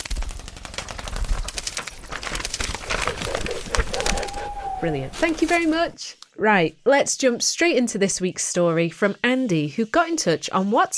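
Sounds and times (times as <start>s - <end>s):
owl wings flapping as it swoops in and lands: 0.0s - 6.0s
speech: 4.8s - 10.9s.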